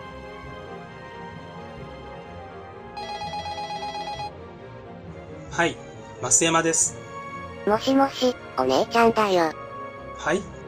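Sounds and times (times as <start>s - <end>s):
steady musical bed: 0.0s - 10.6s
telephone ringing: 3.0s - 4.4s
speech: 5.6s - 7.0s, 7.6s - 9.6s, 10.2s - 10.6s.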